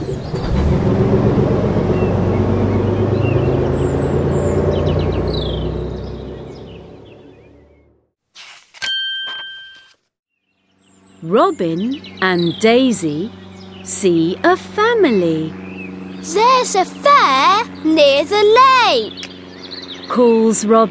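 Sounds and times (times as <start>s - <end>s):
bus engine rumbling as it drives off: 0.0s - 8.0s, 11.3s - 20.8s
single bright bell ringing: 8.8s - 10.0s
speech: 11.3s - 15.6s, 16.2s - 19.3s, 20.1s - 20.8s.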